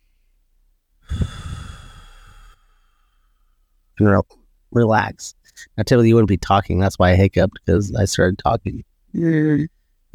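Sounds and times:
long deep breath taken to cure hiccups: 1.0s - 3.8s
speech: 4.0s - 10.1s.

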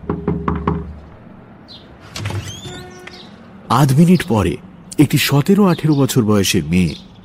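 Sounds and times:
knocking on a wooden door: 0.0s - 1.0s
squeaky creaking and scraping: 1.9s - 3.5s
speech: 3.7s - 7.1s.

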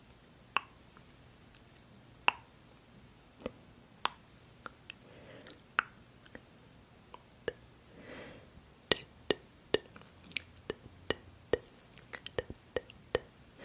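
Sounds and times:
crisp tongue clicks: 0.5s - 0.8s, 2.3s - 2.5s, 3.4s - 6.5s, 7.1s - 7.6s, 8.9s - 13.3s
soft mouth sounds: 0.5s - 0.8s, 1.5s - 2.5s, 3.4s - 6.5s, 7.1s - 13.6s.

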